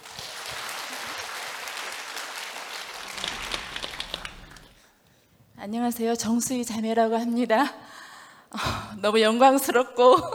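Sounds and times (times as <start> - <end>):
audience applause: 0.0 - 4.8
speech: 5.6 - 7.9, 8.5 - 10.3.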